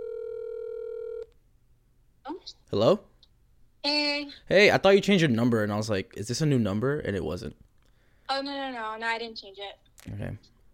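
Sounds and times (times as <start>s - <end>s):
telephone ringing tone: 0.0s - 1.3s
speech: 2.4s - 3.1s, 3.8s - 7.6s, 8.3s - 10.5s.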